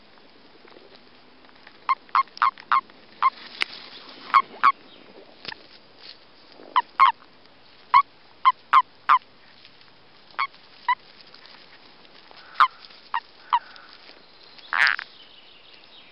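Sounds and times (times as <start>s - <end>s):
faint background hiss: 0.0s - 16.1s
common toad calls during breeding: 1.8s - 5.6s, 6.7s - 7.2s, 7.9s - 9.3s, 10.4s - 11.0s, 12.3s - 15.1s.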